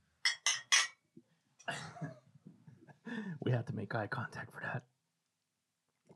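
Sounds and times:
glasses clinking in a toast: 0.3s - 1.0s
speech: 3.2s - 4.9s.

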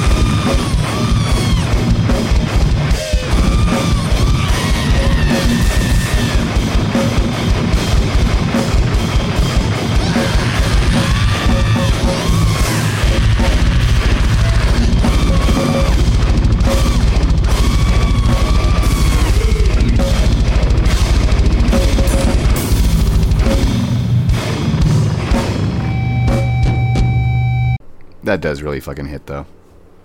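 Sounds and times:
harsh screamed vocals: 0.0s - 2.0s, 3.0s - 6.6s, 9.8s - 20.4s
loud dense noise rock with distorted crashing instrumentation: 0.0s - 27.8s
speech: 28.6s - 29.6s.

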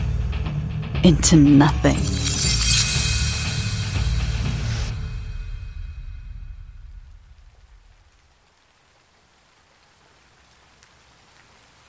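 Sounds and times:
speech: 1.0s - 2.6s
low rumble: 1.8s - 8.3s
glass shattering: 1.9s - 3.9s.

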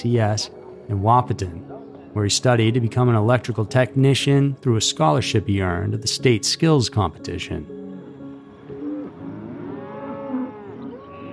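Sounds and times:
speech: 0.0s - 7.8s
cow mooing: 8.8s - 11.3s.

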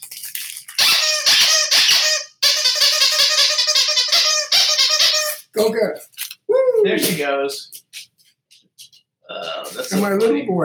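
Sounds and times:
squeaky dog toy being squeezed: 0.8s - 5.6s
speech: 5.6s - 6.2s, 6.8s - 7.8s, 9.3s - 10.6s.

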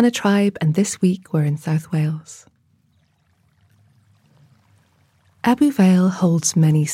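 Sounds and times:
speech: 0.0s - 2.5s, 5.4s - 6.9s
stream flowing over stones in an ancient beech woodland in South Wales: 2.9s - 6.9s.

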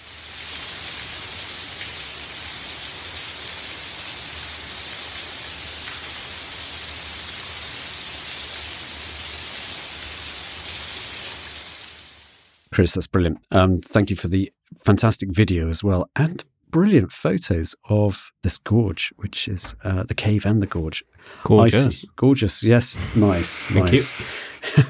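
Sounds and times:
water falling from cave roof onto cave floor: 0.0s - 12.7s
speech: 12.8s - 24.8s
laughter: 21.4s - 22.1s, 22.9s - 24.8s.

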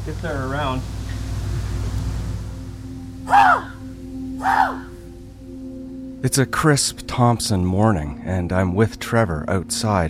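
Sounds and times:
speech: 0.0s - 1.0s, 3.3s - 3.7s, 6.2s - 10.0s
low steady hum: 0.0s - 10.0s
person imitating raven calls to call ravens in: 3.3s - 3.8s, 4.4s - 5.0s.

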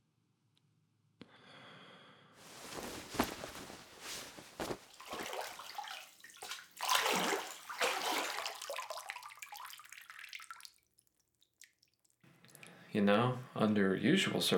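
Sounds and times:
water splashing and trickling into a bucket: 5.0s - 12.8s
speech: 13.0s - 14.5s.

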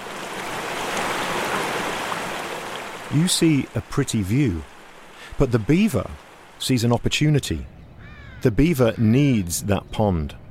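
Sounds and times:
creek water flowing over stones through a forest: 0.0s - 6.8s
speech: 3.1s - 4.7s, 5.4s - 7.8s, 8.4s - 10.4s.

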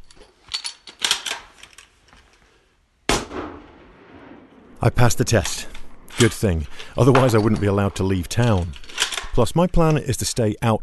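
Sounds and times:
right-handed rifle shots during a shooting test in Svalbard: 3.1s - 7.5s
speech: 4.8s - 10.8s.

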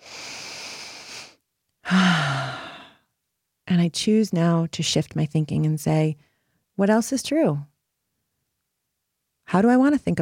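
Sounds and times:
person taking a deep breath: 0.0s - 3.1s
speech: 3.8s - 7.7s, 9.5s - 10.1s.

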